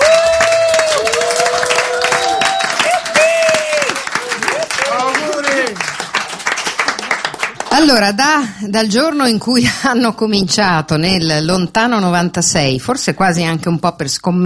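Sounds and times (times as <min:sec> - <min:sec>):
scattered whoops and shouted cheers: 0:00.0 - 0:05.8
theatre audience applauding for a theatre company's 30th anniversary: 0:00.0 - 0:08.1
speech: 0:07.8 - 0:14.4.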